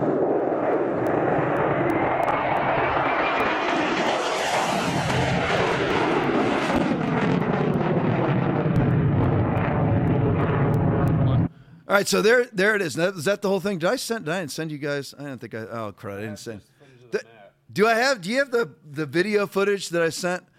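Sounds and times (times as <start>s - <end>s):
jet aircraft roaring past overhead: 0.0s - 11.5s
speech: 11.9s - 20.5s.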